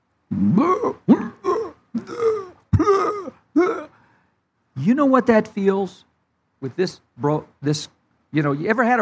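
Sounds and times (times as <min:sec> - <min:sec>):
speech: 0:00.3 - 0:01.4, 0:05.0 - 0:09.0
voice imitating dry heaving: 0:00.3 - 0:04.0.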